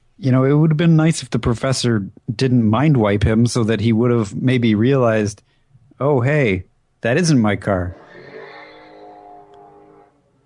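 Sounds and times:
speech: 0.2s - 8.0s
motorcycle passing in the background: 7.9s - 10.4s.

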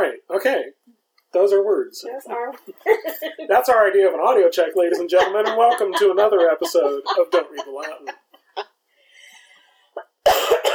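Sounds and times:
speech: 1.5s - 8.2s
laughter: 2.7s - 3.9s, 4.6s - 8.7s
person coughing: 10.0s - 10.7s.

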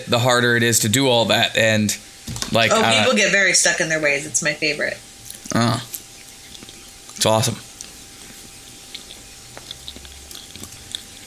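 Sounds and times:
speech: 0.0s - 5.9s, 7.2s - 7.6s
person chewing a banana: 5.0s - 11.2s.

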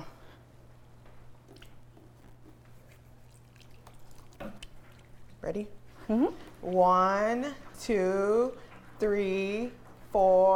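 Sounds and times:
soapy hands rubbed together with a little water: 1.4s - 6.9s
water dripping: 1.4s - 7.3s
speech: 5.5s - 10.5s.

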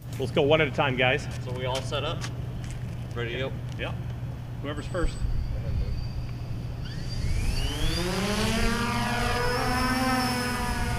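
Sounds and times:
speech: 0.2s - 2.4s, 3.2s - 5.3s
flying drone rotors whizzing past: 5.1s - 10.9s.

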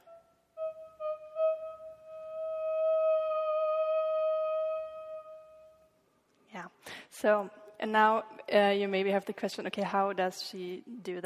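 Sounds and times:
theremin long smooth sustained tone: 0.0s - 5.8s
speech: 6.8s - 11.2s.

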